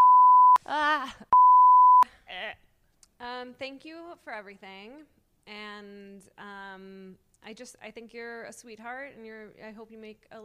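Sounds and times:
loud steady censor bleeps: 0.0s - 0.6s, 1.4s - 2.0s
speech: 0.7s - 1.4s, 3.4s - 10.4s.

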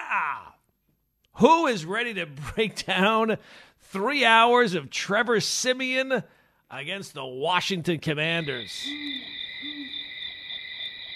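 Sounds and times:
speech: 0.1s - 0.6s, 1.4s - 9.9s
owl hooting: 8.4s - 11.1s
steady high-pitched buzzing drone: 8.4s - 11.1s.

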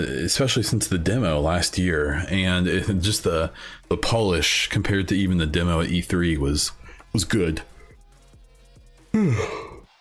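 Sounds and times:
speech: 0.0s - 7.7s, 9.2s - 9.6s
person yawning: 9.2s - 9.9s.

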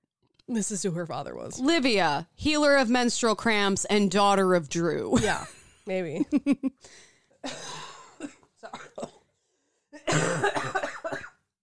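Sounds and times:
speech: 0.5s - 9.1s
person coughing: 7.4s - 9.3s, 10.0s - 11.4s.

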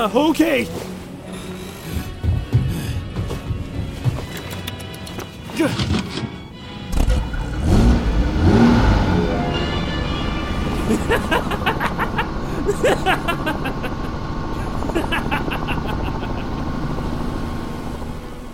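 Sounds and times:
car engine cranking over and revving roughly: 1.1s - 18.5s
sharp clicks and clatter: 4.2s - 7.4s
laughter: 10.7s - 16.7s.

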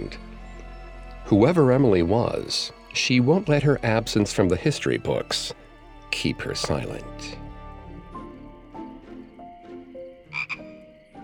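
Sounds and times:
speech: 1.3s - 7.4s
frog croaking: 9.1s - 11.1s.

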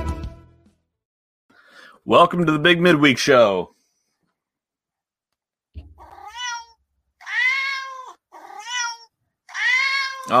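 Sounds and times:
speech: 2.0s - 3.8s
cats meowing: 5.8s - 10.3s.

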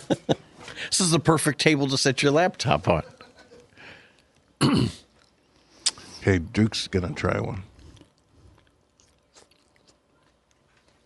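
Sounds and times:
speech: 0.1s - 3.2s, 6.2s - 7.7s
wet chewing and crunching of Spanish tortilla: 3.5s - 6.0s, 7.6s - 11.0s.

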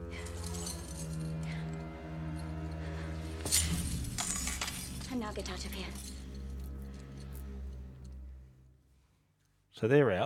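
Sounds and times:
keys jingling as they are handed over: 0.1s - 7.4s
speech: 5.2s - 6.1s, 9.8s - 10.2s.

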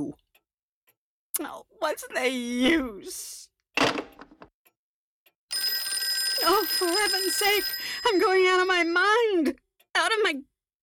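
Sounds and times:
speech: 1.4s - 4.0s, 6.4s - 10.5s
telephone bell ringing: 5.5s - 8.9s.

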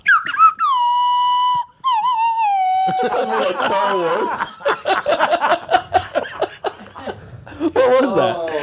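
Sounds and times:
slide whistle playing a short wobbly tune: 0.0s - 3.1s
laughter: 2.7s - 8.6s
speech: 2.9s - 5.6s, 7.8s - 8.6s.

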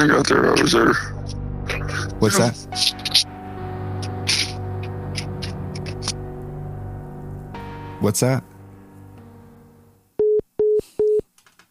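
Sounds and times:
speech: 0.0s - 1.4s, 2.2s - 3.3s, 8.0s - 8.5s
hum: 0.2s - 10.2s
phone line tone beeps after a dropped call: 10.2s - 11.2s.

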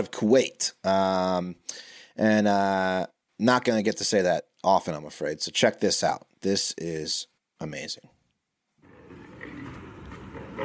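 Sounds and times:
speech: 0.0s - 8.2s
angry female African lion roaring: 8.8s - 10.6s.

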